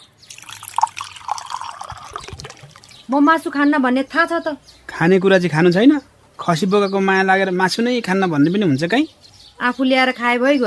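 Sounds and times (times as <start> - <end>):
water being poured: 0.2 - 3.0
speech: 3.1 - 10.6.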